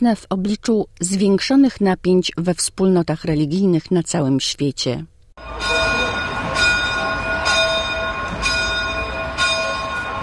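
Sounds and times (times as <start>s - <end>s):
speech: 0.0s - 5.7s
church bells ringing for midnight mass: 5.4s - 10.2s.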